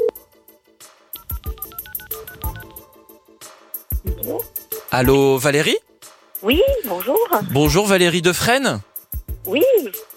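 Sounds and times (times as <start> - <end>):
touch-tone telephone dialing beeps: 1.2 - 2.9
speech: 4.2 - 5.8, 6.4 - 10.1.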